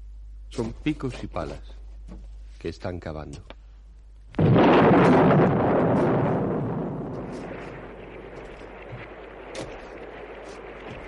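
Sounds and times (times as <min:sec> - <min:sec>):
speech: 0:00.5 - 0:03.6
loud thunder clap: 0:04.4 - 0:11.0
steady hiss of rain: 0:04.8 - 0:11.0.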